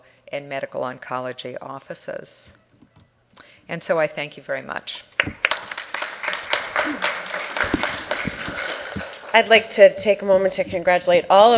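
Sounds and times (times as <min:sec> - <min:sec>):
speech: 0:00.3 - 0:02.6, 0:03.7 - 0:05.4, 0:06.8 - 0:07.2, 0:09.3 - 0:11.5
audience applause: 0:05.4 - 0:09.6.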